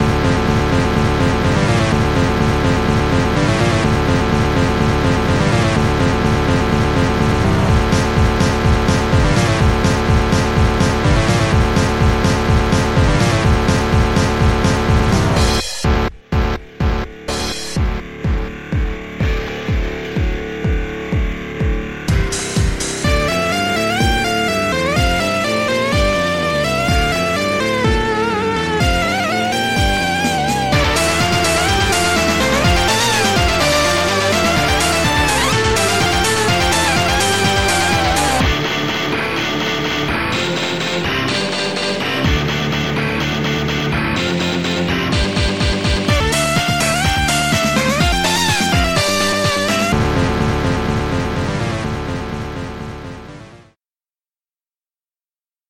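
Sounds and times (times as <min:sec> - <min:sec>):
four-channel Amiga Protracker 8-bit rock music: 0:00.0 - 0:53.8.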